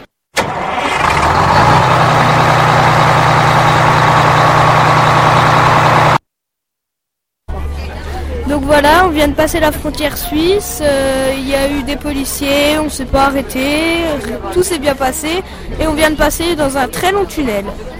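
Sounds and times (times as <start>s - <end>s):
large diesel bus engine idling before departure: 0.7s - 6.2s
speech: 8.7s - 17.9s.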